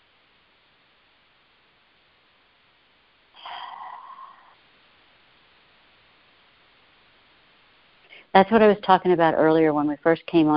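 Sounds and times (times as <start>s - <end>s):
person breathing deeply in and out: 3.4s - 4.6s
speech: 8.3s - 10.5s.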